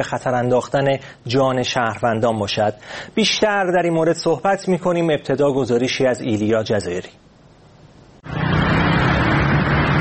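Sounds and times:
speech: 0.0 - 7.2
Sunday street road traffic in Tehran: 8.2 - 9.9.

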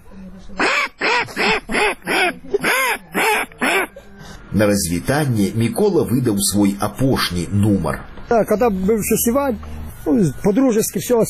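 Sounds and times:
speech: 0.4 - 1.8, 4.6 - 11.2
person's voice imitating a mother duck quacking: 0.6 - 3.9.

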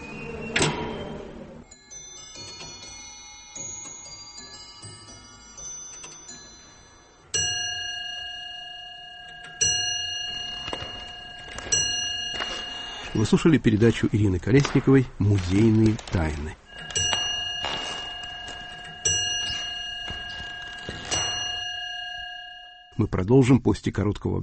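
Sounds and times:
clock striking with bright ringing chimes: 1.7 - 23.0
speech: 13.2 - 16.6, 23.0 - 24.4.

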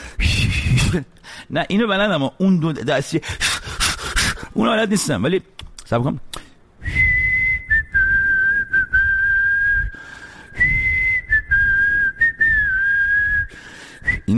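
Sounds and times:
person whistling with lips: 0.2 - 1.0, 6.8 - 14.3
speech: 0.2 - 3.5, 4.6 - 7.0.

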